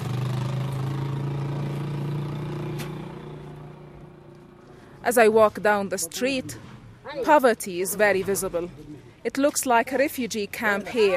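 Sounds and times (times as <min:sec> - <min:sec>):
small truck loaded with blankets, food and medications running its engine: 0:00.0 - 0:04.8
speech: 0:05.0 - 0:11.1.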